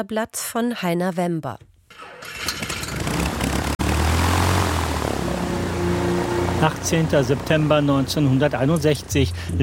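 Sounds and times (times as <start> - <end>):
speech: 0.0 - 2.4, 6.6 - 9.6
Douglas DC-6 airliner propeller engines droning in Leopoldville, Congo: 2.7 - 9.6.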